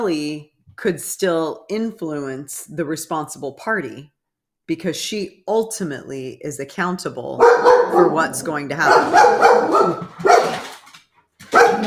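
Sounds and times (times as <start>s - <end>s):
speech: 0.0s - 4.1s, 4.7s - 10.3s
dog barking after knocking over a stack of drawings: 7.4s - 10.7s, 11.4s - 11.8s.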